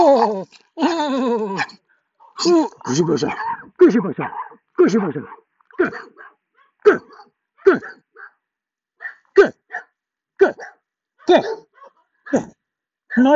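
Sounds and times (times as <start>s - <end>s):
speech: 0.2s - 1.7s, 2.4s - 8.0s, 9.4s - 9.6s, 10.4s - 11.7s, 12.3s - 12.6s, 13.2s - 13.3s
dog barking: 2.9s - 8.4s, 9.0s - 12.5s.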